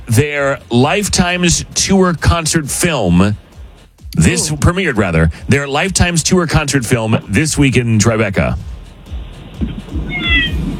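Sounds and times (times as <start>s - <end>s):
low regular thumping: 0.0s - 10.7s
speech: 0.2s - 3.4s, 4.1s - 8.7s
cat meowing: 9.9s - 10.7s.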